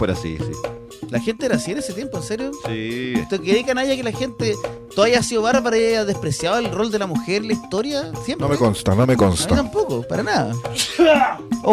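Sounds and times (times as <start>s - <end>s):
speech: 0.0s - 11.7s
person sneezing: 10.7s - 11.5s
laughter: 10.8s - 11.7s.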